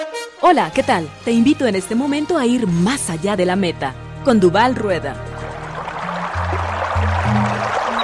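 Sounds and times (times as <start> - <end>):
speech: 0.5 - 5.3
river water flowing: 4.8 - 8.0.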